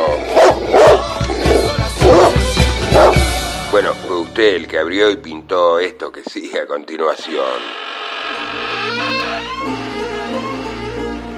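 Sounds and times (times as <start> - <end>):
dog barking: 0.0 - 3.2
speech: 4.4 - 9.8.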